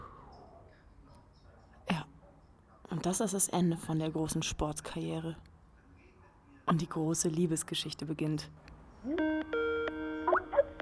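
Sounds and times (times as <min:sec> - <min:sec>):
speech: 0:02.9 - 0:05.5, 0:06.7 - 0:09.4
telephone ringing with chime-like electronic tones: 0:09.1 - 0:10.8.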